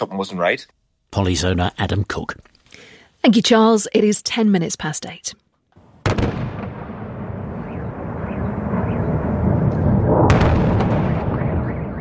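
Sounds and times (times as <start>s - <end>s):
speech: 0.0s - 5.4s
missile strike blasts in the night sky over a city: 6.0s - 11.9s
continuous low rumble: 6.6s - 11.6s.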